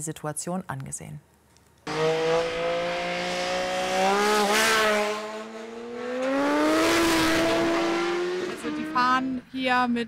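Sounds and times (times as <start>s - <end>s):
speech: 0.0s - 1.4s, 8.6s - 10.0s
cars speeding on a winding hill road: 1.9s - 9.4s.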